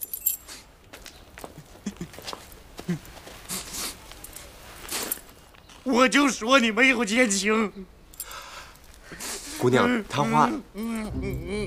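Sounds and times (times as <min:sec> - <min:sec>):
bunch of keys jangling as they are handed over: 0:00.0 - 0:00.6
light rustling and handling noise: 0:00.0 - 0:05.9
speech: 0:02.9 - 0:03.1, 0:05.8 - 0:08.0, 0:09.6 - 0:11.6.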